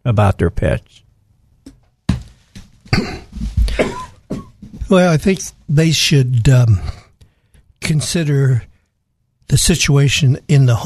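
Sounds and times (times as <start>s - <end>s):
speech: 0.0s - 1.0s, 4.9s - 7.0s, 7.9s - 8.7s, 9.5s - 10.8s
person coughing and clearing throat from a tickle in the throat: 2.9s - 4.8s.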